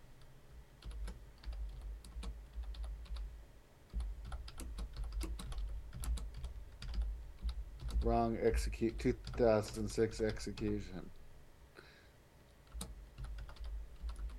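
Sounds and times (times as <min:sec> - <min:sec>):
low steady hum: 0:00.0 - 0:14.3
typing on a computer keyboard: 0:00.8 - 0:03.3, 0:03.9 - 0:08.1, 0:08.9 - 0:10.8, 0:12.6 - 0:14.3
speech: 0:08.0 - 0:11.2.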